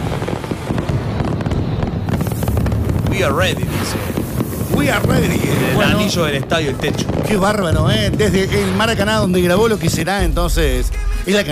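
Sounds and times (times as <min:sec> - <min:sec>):
dense barrage of fireworks explosions in a large open space: 0:00.0 - 0:11.5
speech: 0:03.2 - 0:04.2, 0:04.8 - 0:11.5.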